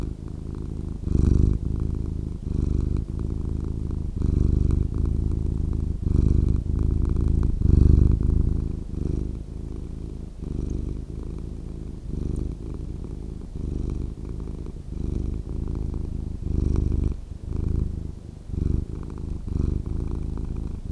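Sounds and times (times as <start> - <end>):
domestic cat purring: 0.0 - 20.9.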